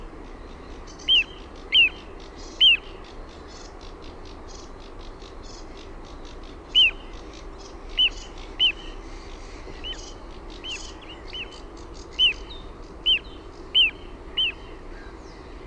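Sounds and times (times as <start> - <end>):
little ringed plover calling: 0.8 - 15.4.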